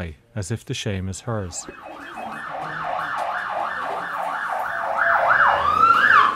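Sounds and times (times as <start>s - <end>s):
speech: 0.0s - 2.2s
ambulance siren wailing as ambulance arrives: 1.6s - 6.3s.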